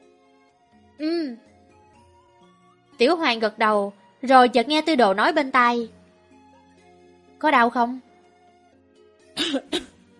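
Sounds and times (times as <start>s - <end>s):
speech: 1.0s - 1.5s, 3.0s - 6.0s, 7.4s - 8.1s, 9.5s - 9.9s
person coughing dryly: 9.4s - 10.0s.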